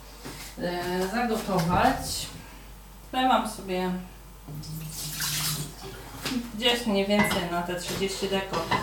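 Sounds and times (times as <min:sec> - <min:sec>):
speech: 0:00.6 - 0:02.4, 0:03.1 - 0:08.8
water running from a tap into a pot for boiling pasta: 0:04.5 - 0:06.1.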